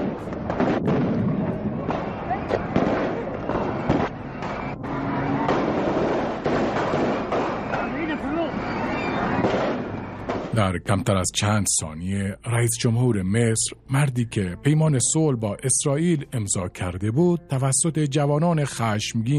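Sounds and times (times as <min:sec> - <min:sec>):
gunfire from soldiers shooting: 0:00.0 - 0:04.7, 0:05.4 - 0:10.6
dense roaring background: 0:00.0 - 0:10.7
voices shouting: 0:01.6 - 0:10.3
speech: 0:10.8 - 0:19.3.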